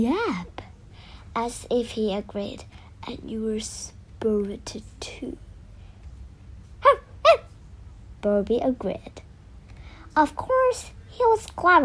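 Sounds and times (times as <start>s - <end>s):
faint low rumble: 0.0s - 11.8s
speech: 1.3s - 5.4s, 8.2s - 9.2s, 10.2s - 11.8s
lively small dog yapping: 6.8s - 7.5s.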